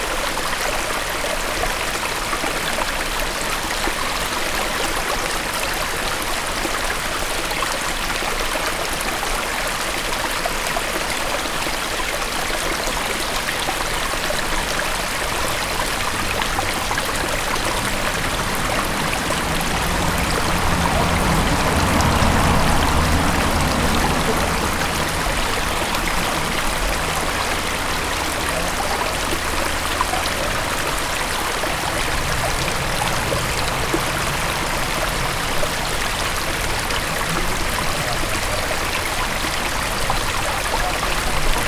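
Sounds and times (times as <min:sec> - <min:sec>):
stream flowing: 0:00.0 - 0:41.6
car passing on the left: 0:12.2 - 0:41.6.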